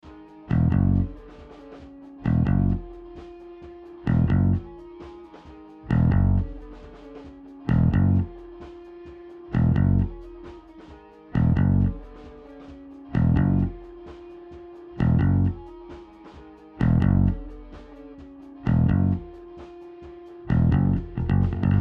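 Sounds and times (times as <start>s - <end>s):
bass sound: 0.5s - 1.2s, 2.2s - 2.9s, 4.0s - 4.7s, 5.9s - 6.6s, 7.7s - 8.4s, 9.5s - 10.2s, 11.4s - 12.0s, 13.1s - 13.8s, 15.0s - 15.7s, 16.8s - 17.6s, 18.6s - 19.3s, 20.5s - 21.7s.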